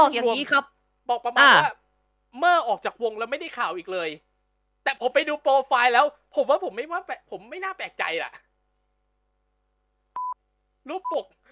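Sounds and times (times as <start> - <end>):
speech: 0.0 - 8.4, 10.8 - 11.4
censor bleep covering a swear word: 10.2 - 10.4.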